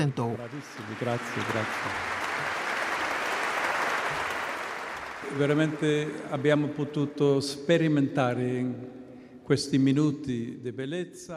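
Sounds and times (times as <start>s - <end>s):
speech: 0.0s - 2.5s, 5.3s - 11.3s
audience applauding after a live performance: 0.0s - 6.8s.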